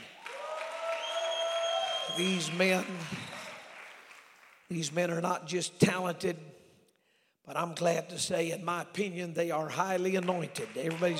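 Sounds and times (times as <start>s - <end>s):
congregation applauding musicians: 0.0s - 5.2s, 9.9s - 11.1s
speech: 2.1s - 3.4s, 4.7s - 6.6s, 7.5s - 11.1s.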